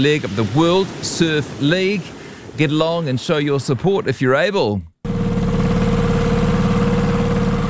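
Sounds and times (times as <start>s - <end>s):
speech: 0.0s - 4.9s
boat engine idling: 5.0s - 7.6s.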